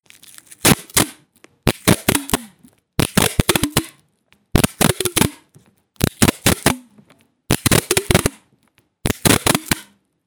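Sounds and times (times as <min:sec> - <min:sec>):
adhesive tape: 0:00.1 - 0:04.0, 0:04.6 - 0:05.4, 0:06.0 - 0:06.9, 0:07.5 - 0:08.4, 0:09.0 - 0:10.0.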